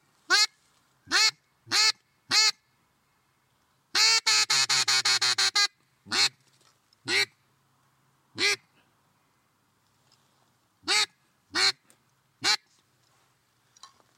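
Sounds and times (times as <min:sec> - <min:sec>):
double-reed duck call blown in loud sharp quacks: 0:00.3 - 0:02.6, 0:03.9 - 0:06.4, 0:07.0 - 0:07.4, 0:08.4 - 0:08.7, 0:10.8 - 0:11.8, 0:12.4 - 0:12.7.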